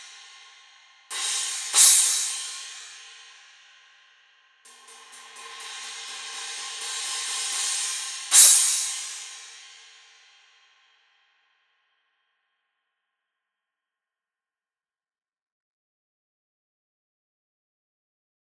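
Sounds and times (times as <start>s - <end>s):
resonant crash: 1.2s - 3.0s, 4.7s - 10.0s.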